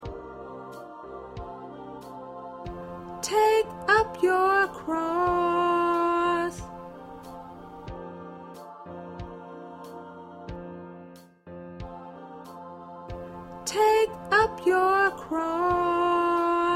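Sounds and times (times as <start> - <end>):
backup alto voice: 3.2 - 6.7, 13.7 - 16.7.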